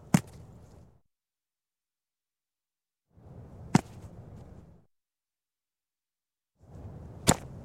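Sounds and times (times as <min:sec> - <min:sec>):
person catching a football: 0:00.1 - 0:00.5, 0:03.7 - 0:04.1, 0:07.2 - 0:07.5.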